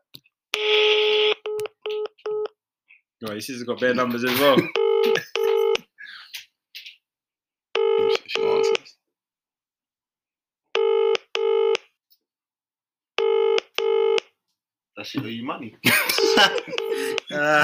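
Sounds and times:
telephone ringing in double bursts: 0:00.6 - 0:02.5, 0:04.7 - 0:05.8, 0:07.8 - 0:08.8, 0:10.8 - 0:11.8, 0:13.2 - 0:14.2, 0:16.1 - 0:17.3
speech: 0:03.2 - 0:05.2, 0:15.5 - 0:17.6
laughter: 0:03.9 - 0:06.2, 0:15.8 - 0:17.6.

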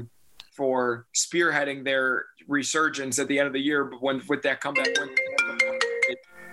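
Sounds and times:
speech: 0:00.0 - 0:06.5
phone ringtone from an incoming call: 0:04.8 - 0:06.5.

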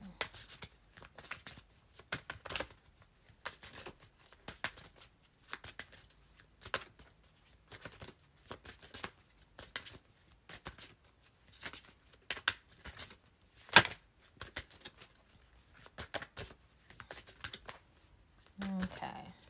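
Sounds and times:
deck of African goddess cards being shuffled: 0:00.1 - 0:19.4.

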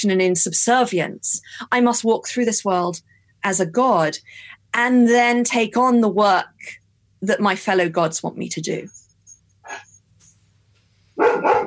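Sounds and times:
speech: 0:00.0 - 0:09.0
greyhound-deerhound cross dog barking inside a house: 0:11.2 - 0:11.6.

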